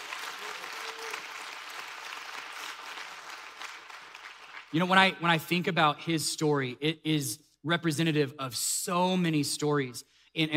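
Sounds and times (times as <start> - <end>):
large audience applause: 0.0 - 4.8
speech: 4.7 - 10.5.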